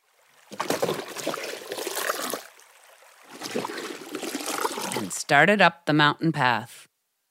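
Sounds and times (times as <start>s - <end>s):
buckets plunging into river water: 0.2s - 5.2s
speech: 5.3s - 6.7s.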